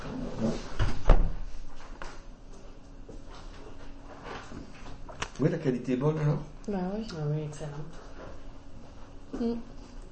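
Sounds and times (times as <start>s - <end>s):
door thumping shut: 0.8s - 1.5s
speech: 5.4s - 8.0s, 9.4s - 9.8s.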